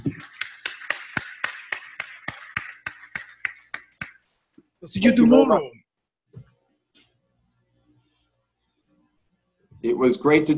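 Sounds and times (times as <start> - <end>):
applause: 0.0 - 4.2
speech: 4.8 - 6.4, 9.8 - 10.5.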